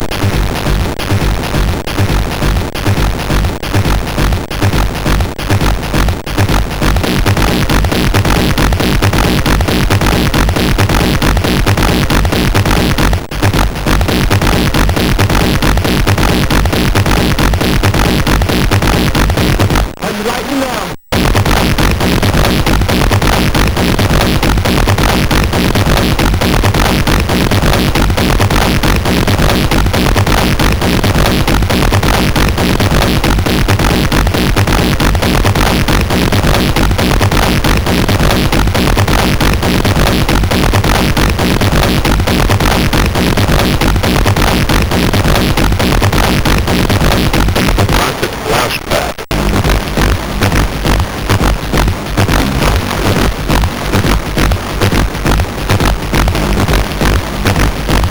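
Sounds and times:
music on a MOS6581R2 SID chip: 0.0 - 58.0.

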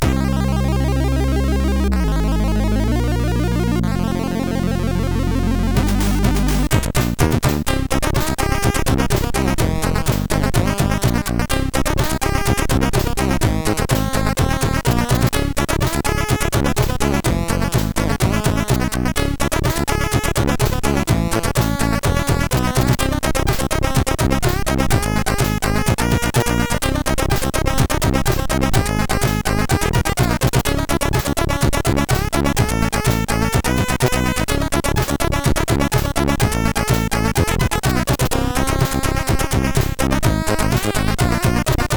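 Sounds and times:
MOS 6581R4 SID sound chip synthesizer: 0.0 - 41.9.

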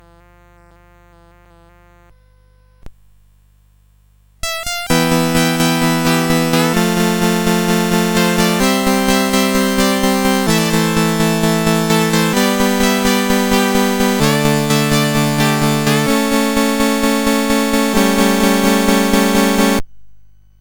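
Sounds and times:
plucked note: 4.4 - 19.8.

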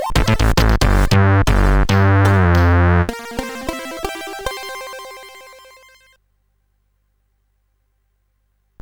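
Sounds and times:
CSG8580R5 sid chip synth tune: 0.1 - 6.1.

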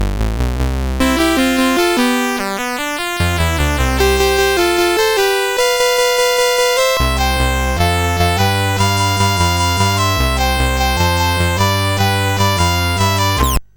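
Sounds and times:
song on a CSG8580R5 sound chip: 1.0 - 13.6.

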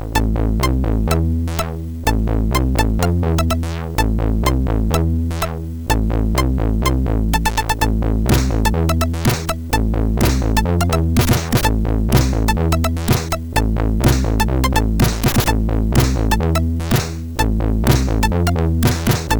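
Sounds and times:
action drums on MOS6581 SID chip: 0.2 - 19.3.

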